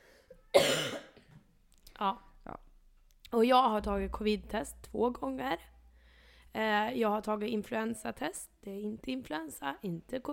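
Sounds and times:
harsh cough from someone with a common cold: 0.5s - 1.4s
speech: 2.0s - 2.6s, 3.3s - 5.7s, 6.6s - 10.3s.

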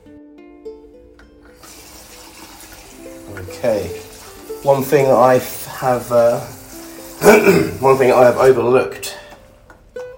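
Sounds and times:
tap water running into a sink while hand-washing underpants in Bali: 1.5s - 8.9s
speech: 3.4s - 6.6s, 7.2s - 9.2s.

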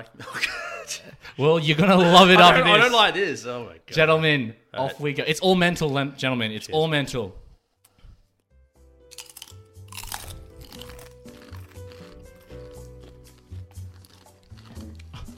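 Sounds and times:
speech: 0.0s - 7.4s
crunching and chewing a crisp spicy chip: 9.1s - 15.3s.

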